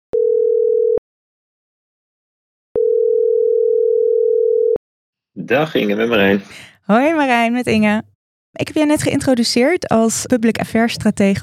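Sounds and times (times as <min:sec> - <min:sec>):
telephone ringback tone while a call is being placed: 0:00.2 - 0:01.0, 0:02.8 - 0:04.8
speech: 0:05.5 - 0:11.4.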